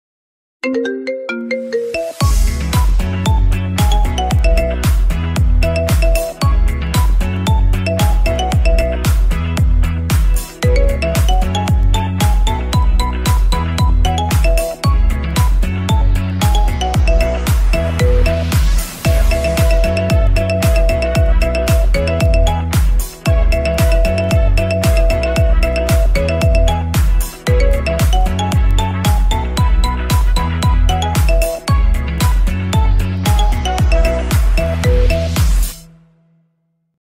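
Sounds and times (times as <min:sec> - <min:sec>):
marimba remix ringtone for iPhone: 0:00.6 - 0:09.3, 0:10.6 - 0:35.6.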